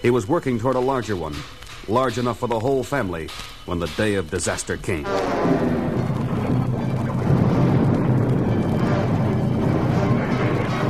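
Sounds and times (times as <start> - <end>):
speech: 0.0 - 5.8
planet exploding, low rumble with crashing and crackling ground: 5.1 - 10.8.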